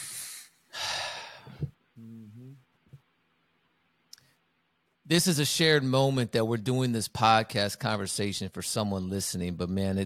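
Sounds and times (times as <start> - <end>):
person breathing deliberately: 0.0 - 2.4
voiced sigh: 0.0 - 2.6
speech: 5.1 - 10.0.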